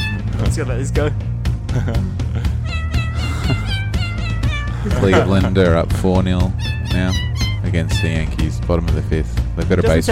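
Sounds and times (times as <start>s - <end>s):
speech: 0.5s - 2.5s, 4.8s - 10.1s
cat meowing: 2.6s - 5.5s.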